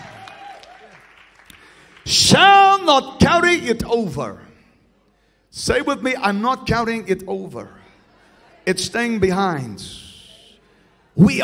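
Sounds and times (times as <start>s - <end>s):
crowd clapping and cheering: 0.0s - 2.8s
speech: 2.1s - 4.4s, 5.6s - 7.8s, 8.7s - 10.0s, 11.2s - 11.4s.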